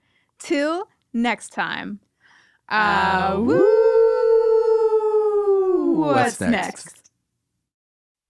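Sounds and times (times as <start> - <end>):
speech: 0.5 - 2.1, 2.7 - 3.8, 6.0 - 7.0
several people howling in imitation of wolves: 3.0 - 6.2.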